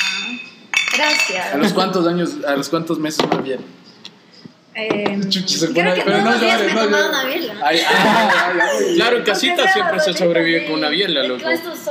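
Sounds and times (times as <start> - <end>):
glasses clinking in a toast: 0.0 - 1.7
speech: 1.0 - 3.9, 4.8 - 11.8
laughter: 7.6 - 9.5.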